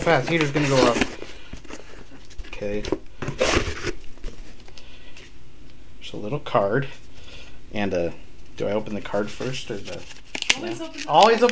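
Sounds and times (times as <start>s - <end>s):
speech: 0.0s - 1.2s, 2.6s - 3.5s, 6.1s - 7.0s, 7.7s - 11.5s
gift wrapping paper tearing and crinkling: 0.0s - 4.4s, 9.2s - 11.5s.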